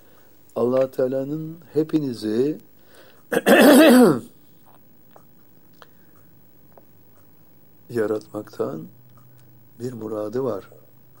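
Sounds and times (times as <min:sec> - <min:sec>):
hiss: 0:00.0 - 0:11.1
speech: 0:00.6 - 0:02.7, 0:03.3 - 0:04.3, 0:07.9 - 0:09.0, 0:09.8 - 0:10.8
man coughing during a religious sermon: 0:03.3 - 0:04.3.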